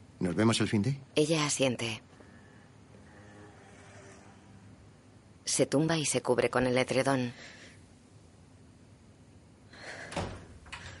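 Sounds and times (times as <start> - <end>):
faint noise: 0.0 - 10.9
speech: 0.2 - 2.1, 5.6 - 7.6
door closing with a soft thud: 10.0 - 10.9.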